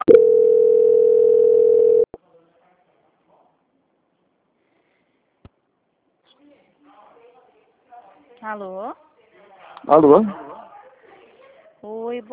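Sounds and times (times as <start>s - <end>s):
telephone tone during a call transfer: 0.0s - 2.1s
speech: 8.4s - 9.0s, 9.8s - 10.4s.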